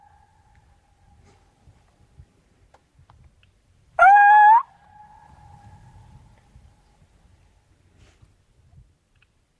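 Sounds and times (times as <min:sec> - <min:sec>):
owl calls sounded to lure males into answering: 0:04.0 - 0:05.3.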